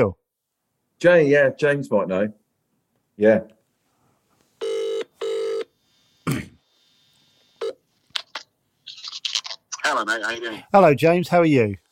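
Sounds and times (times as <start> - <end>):
speech: 0.0 - 0.2, 1.0 - 2.4, 3.2 - 3.6, 9.9 - 11.8
buzzing phone ringback pulses: 4.6 - 6.2.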